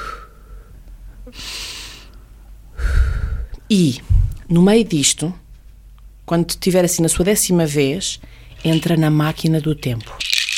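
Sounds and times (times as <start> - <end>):
breathing in and out to a slow mental count: 0.0 - 4.4, 8.2 - 8.6
speech: 1.3 - 1.5, 3.7 - 5.4, 6.3 - 10.3.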